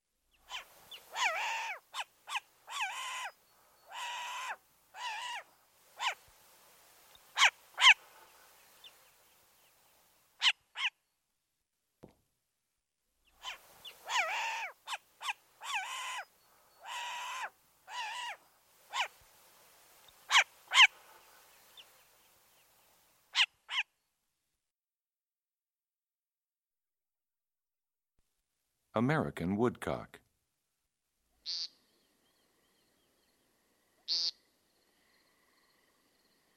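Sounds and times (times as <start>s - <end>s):
short-eared owl harsh raspy barking calls: 0.4s - 6.2s, 7.3s - 8.3s, 10.4s - 11.0s, 13.3s - 19.2s, 20.2s - 21.9s, 23.3s - 23.9s, 31.4s - 31.8s, 34.0s - 34.5s
speech: 29.0s - 30.2s, 31.4s - 31.7s.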